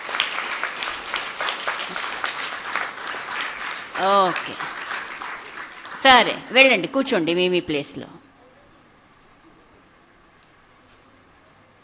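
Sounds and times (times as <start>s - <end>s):
audience clapping at a school meditation session: 0.0s - 6.5s
speech: 4.0s - 4.8s, 6.0s - 8.2s.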